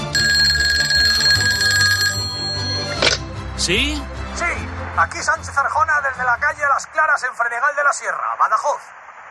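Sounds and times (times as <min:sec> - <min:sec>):
telephone bell ringing for the first telephone call: 0:00.2 - 0:03.2
speech: 0:03.6 - 0:04.1, 0:05.0 - 0:09.0.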